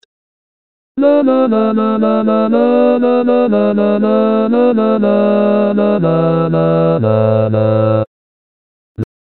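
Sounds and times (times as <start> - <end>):
sevillanas bass introduction: 1.0 - 8.1.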